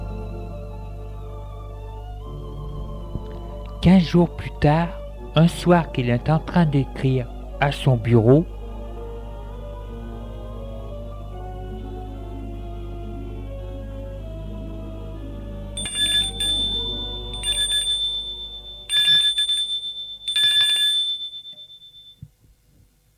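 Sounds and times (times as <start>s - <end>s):
speech: 3.9s - 8.6s
doorbell ringing: 15.8s - 22.2s.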